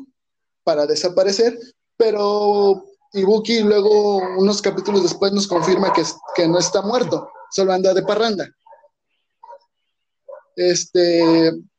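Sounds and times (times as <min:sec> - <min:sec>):
speech: 0:00.7 - 0:08.6, 0:10.6 - 0:11.7
dog barking: 0:03.6 - 0:11.6.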